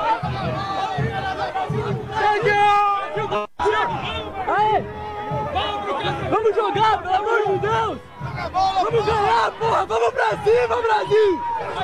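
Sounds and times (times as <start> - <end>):
crowd of Brazil football fans cheering and shouting for an arriving player: 0.0 - 11.8
high yells from football fans: 0.0 - 11.8
speech: 8.5 - 11.8.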